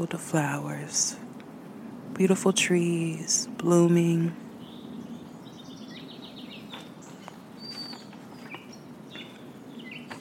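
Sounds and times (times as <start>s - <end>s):
speech: 0.0s - 1.2s, 2.2s - 4.4s
birds chirping and trilling outdoors: 0.0s - 10.2s
steady outdoor hum: 0.0s - 10.2s.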